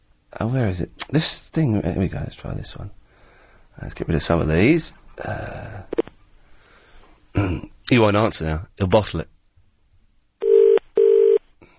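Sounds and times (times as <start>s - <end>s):
speech: 0.4s - 3.0s, 3.8s - 6.0s, 7.4s - 9.3s
telephone keypad dialing tones: 10.4s - 11.4s.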